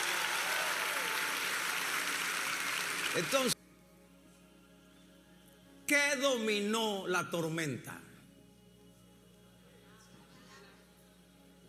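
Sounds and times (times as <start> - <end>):
faint applause for a group of young men at a worship service: 0.0 - 3.6
speech: 3.1 - 3.6, 6.1 - 8.1.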